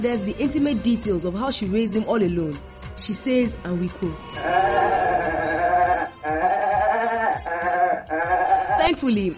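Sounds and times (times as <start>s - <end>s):
speech: 0.0s - 6.6s, 8.0s - 9.3s
goat bleating: 4.4s - 9.0s.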